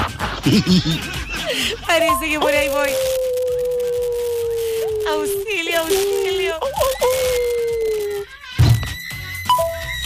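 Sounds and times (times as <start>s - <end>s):
laughter: 0.0s - 2.9s
speech: 0.4s - 1.2s, 1.8s - 3.2s, 5.0s - 7.5s
eerie werewolf howl sound effect: 2.4s - 8.3s.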